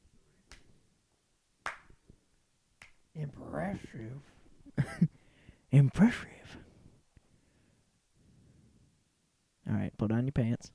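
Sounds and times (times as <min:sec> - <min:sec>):
hand claps: 0:00.5 - 0:00.7, 0:01.6 - 0:02.0, 0:02.8 - 0:03.0
speech: 0:03.2 - 0:05.1, 0:05.7 - 0:06.6, 0:10.1 - 0:10.7.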